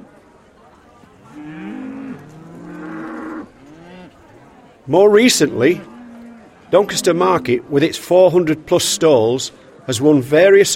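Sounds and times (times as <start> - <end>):
cow mooing: 1.3 - 4.2, 5.6 - 7.7
speech: 4.9 - 5.9, 6.7 - 10.7.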